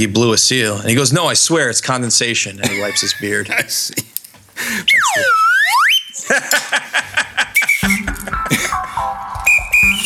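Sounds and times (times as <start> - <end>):
speech: 0.0 - 5.4
laughter: 2.6 - 4.0, 6.2 - 9.0
breathy voiced sounds: 4.6 - 5.0
whistle whose ball has fallen out giving breathy tones: 4.6 - 6.2, 7.6 - 10.0.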